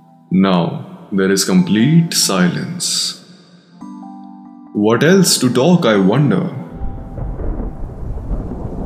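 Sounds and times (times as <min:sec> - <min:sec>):
speech: 0:00.3 - 0:03.2, 0:04.8 - 0:06.6
deep thunder rumbling in a storm: 0:06.7 - 0:08.8.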